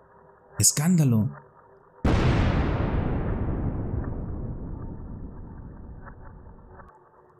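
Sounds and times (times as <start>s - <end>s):
speech: 0.6s - 1.4s
loud explosion on the outskirts of a village: 2.1s - 6.0s.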